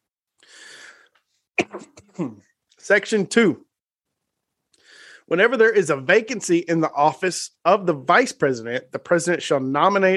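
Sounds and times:
person coughing away from the microphone: 1.6 - 2.5
speech: 1.7 - 3.7, 5.3 - 10.1.

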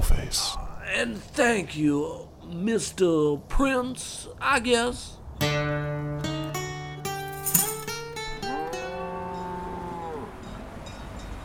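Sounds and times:
speech: 0.3 - 6.1
cattle mooing at a crossing: 8.4 - 10.5.

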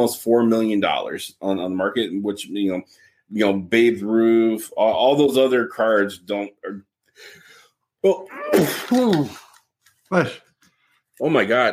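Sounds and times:
speech: 0.0 - 7.4, 8.0 - 9.4, 10.1 - 10.4, 11.2 - 11.7
loud sneeze: 8.3 - 9.4.

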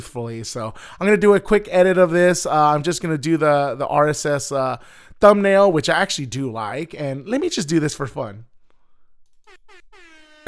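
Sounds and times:
speech: 0.0 - 8.5
air horn blasts: 9.5 - 10.4.

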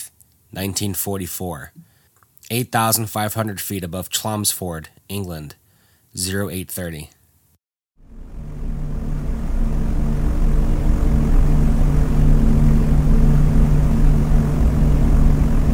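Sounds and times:
speech: 0.5 - 1.9, 2.5 - 7.2
propeller bomber engines from a formation flying at 8,500 feet over England: 8.1 - 15.7.

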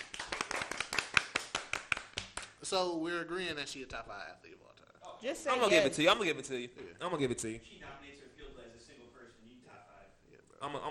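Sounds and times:
hands clapping: 0.0 - 2.6
speech: 2.7 - 4.6, 5.2 - 8.2, 10.6 - 10.8.

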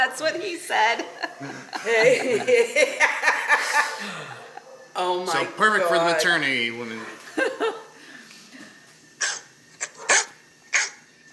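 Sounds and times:
speech: 0.0 - 4.4, 5.0 - 7.8
laughter: 0.8 - 4.7, 7.2 - 7.9
dog barking: 4.4 - 5.0, 9.2 - 11.0.

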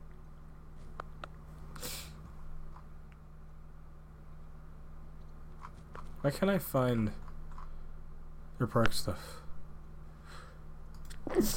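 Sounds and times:
quiet hum: 0.0 - 11.5
speech: 6.2 - 7.2, 8.6 - 9.4, 11.4 - 11.5
person sneezing: 11.3 - 11.5.

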